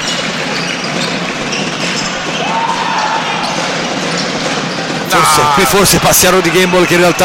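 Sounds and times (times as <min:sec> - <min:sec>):
basketball dribbled on a court: 0:00.0 - 0:05.1
sneaker squeak: 0:00.0 - 0:05.1
roar of a crowded arena: 0:02.3 - 0:04.2, 0:05.0 - 0:07.2
speech: 0:05.1 - 0:07.2.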